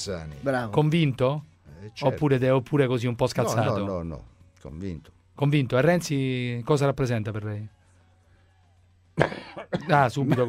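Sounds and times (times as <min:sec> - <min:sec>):
speech: 0:00.0 - 0:07.8, 0:09.2 - 0:10.4
harsh throaty cough: 0:09.2 - 0:10.4.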